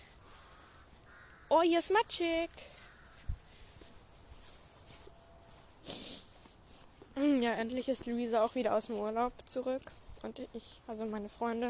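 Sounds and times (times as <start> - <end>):
noise: 0.0 - 11.6
raven cawing: 0.1 - 1.6, 2.6 - 3.8
speech: 1.5 - 2.7, 7.2 - 11.6.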